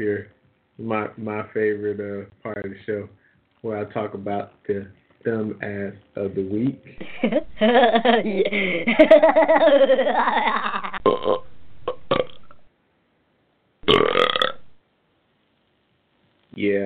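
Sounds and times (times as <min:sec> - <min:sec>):
speech: 0:00.0 - 0:11.5, 0:16.6 - 0:16.8
laughter: 0:07.0 - 0:11.0
long drawn-out burp: 0:10.2 - 0:12.6, 0:13.8 - 0:14.8.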